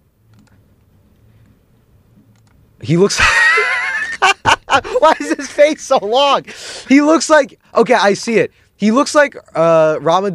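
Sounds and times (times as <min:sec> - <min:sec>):
low steady hum: 0:00.0 - 0:10.3
typing on a computer keyboard: 0:00.3 - 0:00.6
speech: 0:02.8 - 0:03.4, 0:04.8 - 0:10.3
laughter: 0:03.1 - 0:06.1.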